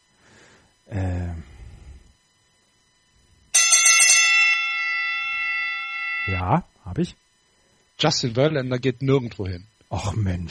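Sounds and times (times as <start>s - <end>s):
bright metallic bell strike: 3.6s - 6.6s
speech: 6.4s - 7.2s, 8.0s - 10.4s.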